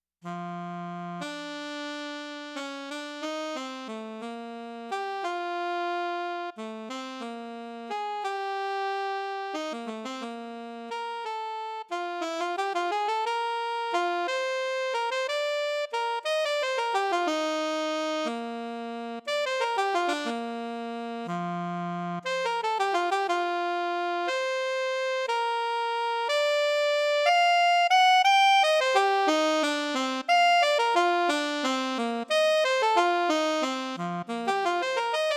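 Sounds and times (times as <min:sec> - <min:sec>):
lyrical alto saxophone: 0:00.2 - 0:35.3.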